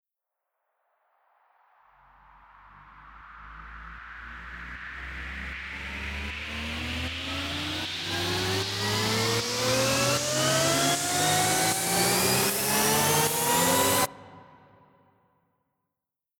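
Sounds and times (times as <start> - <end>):
future bass FX riser: 2.2 - 14.8.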